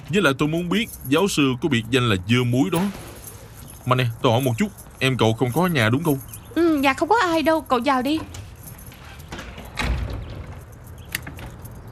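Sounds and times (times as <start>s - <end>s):
speech: 0.1s - 3.0s, 3.9s - 8.4s
house door swinging shut with a dull heavy thud: 9.3s - 11.9s
door latch click: 9.6s - 11.9s.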